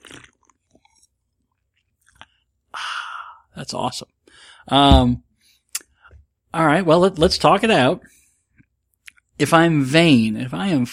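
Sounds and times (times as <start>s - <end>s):
person gulping diet soda: 0.0s - 2.6s
someone sipping a Diet Dr. Pepper: 0.0s - 3.4s
speech: 3.6s - 4.1s, 4.7s - 5.2s, 6.5s - 8.2s, 9.4s - 10.9s.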